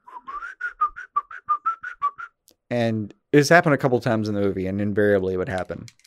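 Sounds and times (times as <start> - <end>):
person whistling a bouncy movie theme tune: 0.0 - 2.4
speech: 2.7 - 6.0.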